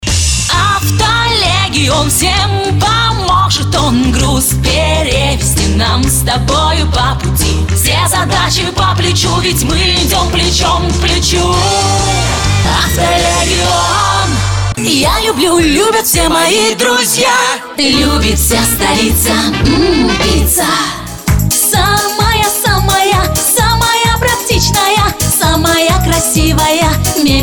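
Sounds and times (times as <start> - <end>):
Russian vocals: 0.3 - 27.4.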